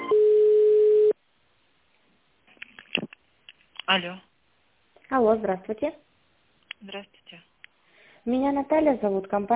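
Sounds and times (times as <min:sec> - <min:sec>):
telephone line tones while a call is being connected: 0:00.1 - 0:01.2
speech: 0:03.9 - 0:04.3, 0:05.1 - 0:06.0, 0:06.8 - 0:07.5, 0:08.2 - 0:09.5.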